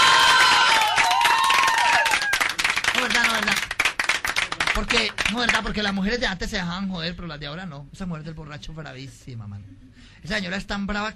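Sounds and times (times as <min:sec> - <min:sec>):
audience applause and cheering at a live joke-telling show: 0:00.0 - 0:05.3
speech: 0:04.8 - 0:11.1.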